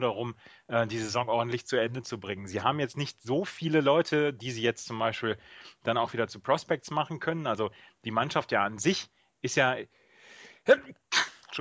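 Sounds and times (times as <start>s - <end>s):
speech: 0.0s - 10.0s, 10.6s - 11.6s
single sharp sneeze: 11.1s - 11.6s.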